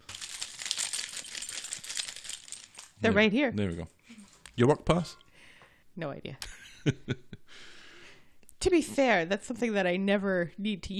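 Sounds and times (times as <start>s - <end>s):
car keys jingling: 0.0s - 3.0s
speech: 3.0s - 4.0s, 4.6s - 5.2s, 6.0s - 7.7s, 8.6s - 10.9s.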